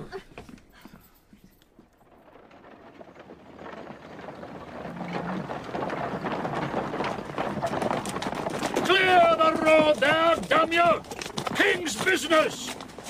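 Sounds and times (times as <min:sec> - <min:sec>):
horse hooves clopping of a horse-drawn coach: 0:00.0 - 0:13.0
horse-drawn coach wheels rumbling and rattling: 0:01.8 - 0:13.0
speech: 0:09.9 - 0:12.6.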